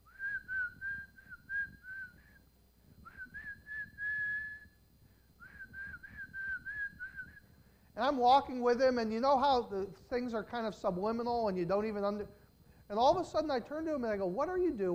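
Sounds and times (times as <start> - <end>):
person whistling a tune: 0.0 - 2.4, 3.0 - 4.8, 5.4 - 7.4
speech: 8.0 - 14.9.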